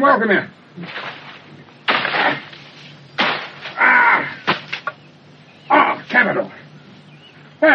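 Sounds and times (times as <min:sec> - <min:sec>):
speech: 0:00.0 - 0:01.2, 0:06.1 - 0:06.6
old cutlass chopping through a dense hedge: 0:00.8 - 0:05.0
hedge leaves rustling and twigs snapping: 0:00.8 - 0:05.1.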